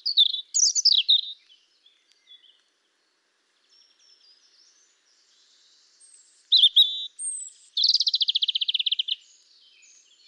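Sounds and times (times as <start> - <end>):
European robin Erithacus rubecula singing: 0.0 - 10.2.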